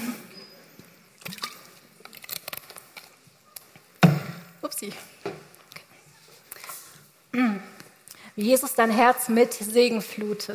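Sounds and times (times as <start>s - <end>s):
sipping and swallowing water: 0.8s - 3.0s
speech: 4.8s - 5.3s, 8.4s - 10.5s.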